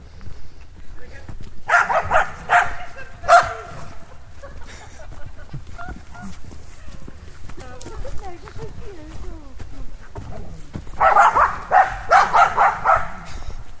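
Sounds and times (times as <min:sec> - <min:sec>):
several dogs barking while playing: 0:01.6 - 0:04.8, 0:10.2 - 0:13.6
dogs yipping: 0:01.7 - 0:04.8, 0:05.7 - 0:07.1, 0:10.4 - 0:13.6
laughter: 0:02.8 - 0:07.1.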